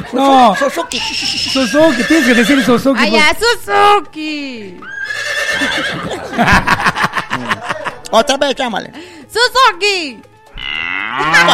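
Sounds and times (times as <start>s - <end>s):
laughter: 0.0s - 2.6s, 5.6s - 8.4s, 11.2s - 11.5s
speech: 0.1s - 5.0s, 5.6s - 7.5s, 8.1s - 10.3s, 11.1s - 11.5s
horse whinnying in response to its name being called: 0.4s - 3.0s, 4.8s - 6.1s, 10.6s - 11.5s.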